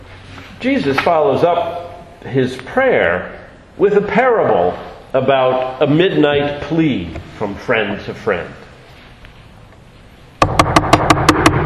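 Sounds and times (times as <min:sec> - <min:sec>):
speech: 0:00.6 - 0:08.6
knocking on a door: 0:10.4 - 0:11.6.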